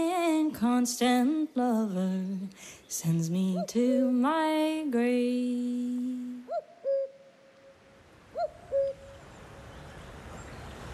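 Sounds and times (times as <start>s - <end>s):
faint steady outdoor hiss: 0.0s - 10.9s
speech: 0.5s - 7.1s
cuckoo singing soft hollow hooting notes: 3.4s - 4.1s, 6.4s - 10.6s.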